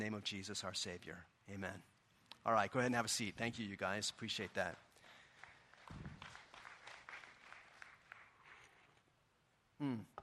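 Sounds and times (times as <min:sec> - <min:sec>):
speech: 0:00.0 - 0:04.9, 0:09.8 - 0:10.2
sparse hesitant audience applause: 0:04.4 - 0:08.7.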